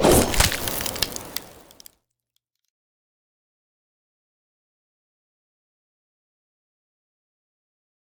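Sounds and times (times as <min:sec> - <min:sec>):
dragon creature attacking: 0:00.0 - 0:01.9
rending cold slash: 0:00.0 - 0:01.9.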